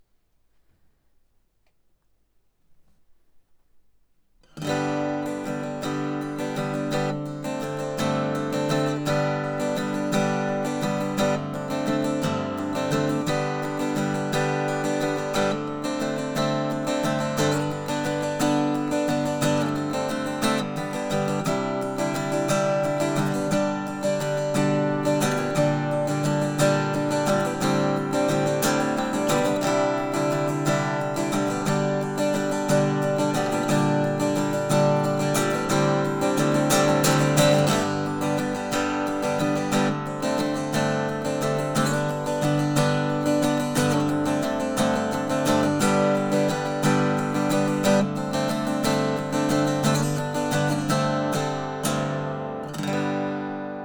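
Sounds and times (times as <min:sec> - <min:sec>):
acoustic guitar strum: 0:04.4 - 0:53.8.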